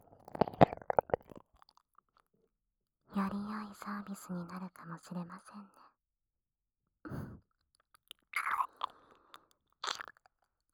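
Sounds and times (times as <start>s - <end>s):
wet licking and mouth sounds of ear licking: 0.2s - 1.4s
speech: 3.2s - 5.8s.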